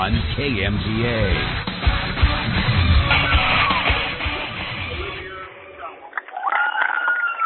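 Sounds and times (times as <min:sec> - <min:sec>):
speech: 0:00.0 - 0:02.8
crowd at a high school basketball game cheering and yelling: 0:03.0 - 0:07.4
voices whooping: 0:03.1 - 0:04.1, 0:05.0 - 0:07.4.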